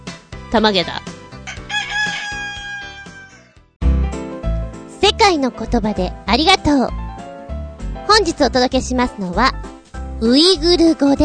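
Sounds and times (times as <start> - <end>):
speech: 0.5 - 1.2, 5.3 - 7.0, 8.1 - 11.2
rooster crowing: 1.4 - 3.7.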